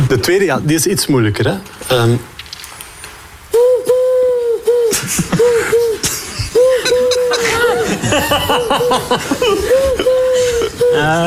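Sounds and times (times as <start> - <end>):
speech: 0.1 - 2.3, 8.6 - 10.1, 10.7 - 11.2
human voice imitating a parrot copying a dove's call: 3.6 - 11.2
chuckles and laughter: 4.6 - 11.2.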